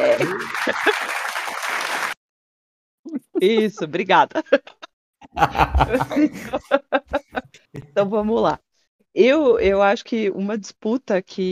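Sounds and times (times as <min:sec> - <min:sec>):
laughter: 0:00.0 - 0:01.6, 0:03.4 - 0:08.0
crowd applause: 0:00.0 - 0:02.2
speech: 0:03.4 - 0:04.8, 0:05.4 - 0:07.1, 0:08.0 - 0:08.6, 0:09.2 - 0:11.5.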